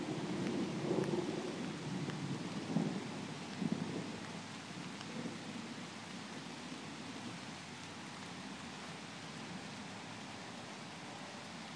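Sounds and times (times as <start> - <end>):
rain pouring down during a storm: 0.0 - 11.7
distant thunder rumbling during a storm: 0.1 - 5.9.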